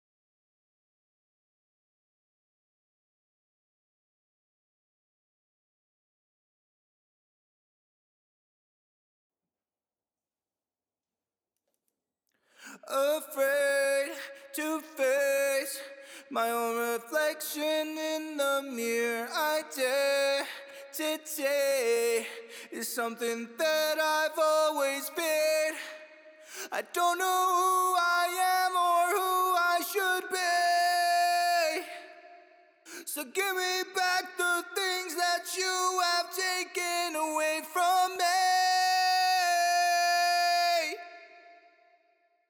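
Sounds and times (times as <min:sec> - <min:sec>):
heavy wet vocal harmony in D sharp minor: 0:12.7 - 0:41.5.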